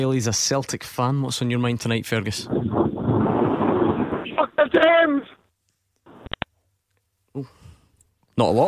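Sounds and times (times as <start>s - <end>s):
speech: 0.0s - 2.9s, 7.4s - 7.6s, 8.4s - 8.6s
wind roar on a phone line: 2.4s - 5.3s
garbled voice on a phone line: 4.2s - 5.4s.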